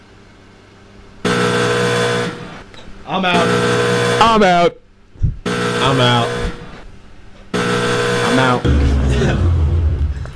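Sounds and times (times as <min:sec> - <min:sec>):
loud harsh game-show red buzzer of disapproval: 0:01.2 - 0:02.6, 0:03.2 - 0:04.7, 0:05.4 - 0:06.9, 0:07.5 - 0:10.2
speech: 0:03.1 - 0:04.8, 0:05.8 - 0:06.4, 0:08.4 - 0:09.5.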